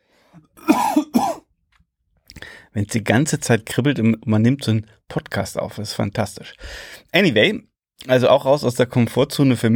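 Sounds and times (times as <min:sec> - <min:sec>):
coughing: 0:00.5 - 0:01.5
throat-clearing rasp: 0:00.6 - 0:01.4
speech: 0:02.8 - 0:09.7.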